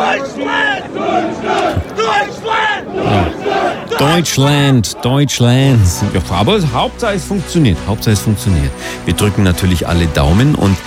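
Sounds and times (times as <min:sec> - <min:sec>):
crowd cheering in American style: 0:00.0 - 0:06.2
speech: 0:00.2 - 0:01.6, 0:04.0 - 0:10.8.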